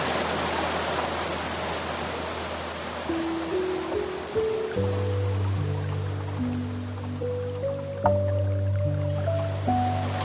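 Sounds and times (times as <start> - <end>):
flowing stream water hissing: 0.0 - 10.2
soft piano notes and chords: 3.0 - 10.2.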